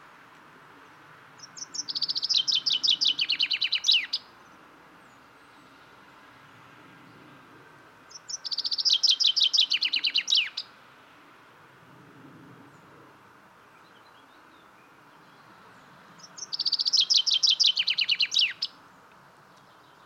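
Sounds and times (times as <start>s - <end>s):
common chaffinch Fringilla coelebs singing descending songs with a flourish: 1.4s - 4.2s, 8.1s - 10.7s, 16.2s - 18.7s.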